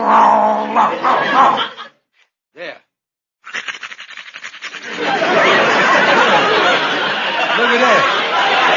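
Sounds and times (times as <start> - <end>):
man on all fours growling like a dog: 0.0 - 1.6
laughter: 0.7 - 2.0, 4.8 - 8.7.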